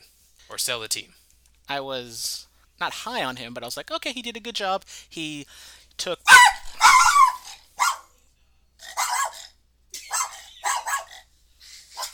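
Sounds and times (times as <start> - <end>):
speech: 0.5 - 6.5
dog barking in short sharp bursts: 6.3 - 8.1, 8.9 - 9.5, 10.1 - 11.2.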